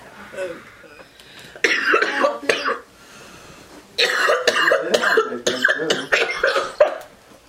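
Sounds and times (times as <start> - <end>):
harsh hacking coughs after a hit of smoke: 1.6 - 2.8, 4.0 - 7.1.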